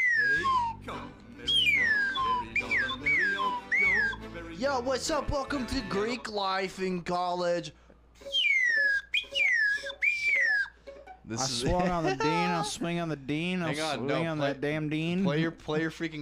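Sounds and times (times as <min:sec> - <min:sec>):
slide whistle swooping up and down: 0:00.0 - 0:04.2, 0:08.2 - 0:10.8
speech: 0:04.6 - 0:07.8, 0:11.3 - 0:16.2.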